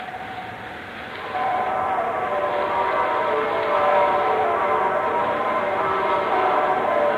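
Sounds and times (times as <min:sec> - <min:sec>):
many church bells ringing in Cherbourg harbour town at midnight on Christmas Day: 0:01.2 - 0:07.1.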